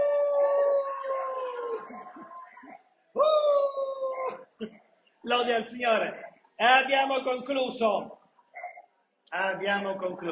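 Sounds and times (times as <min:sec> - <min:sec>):
dogs howling: 0:00.0 - 0:04.4
speech: 0:04.6 - 0:08.2, 0:09.3 - 0:10.2.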